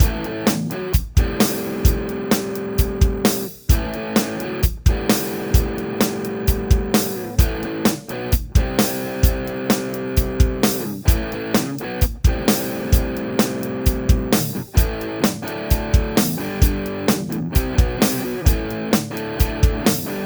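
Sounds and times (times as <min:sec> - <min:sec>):
distorted Gibson SG electric guitar on bridge pickup: 0:00.0 - 0:20.2.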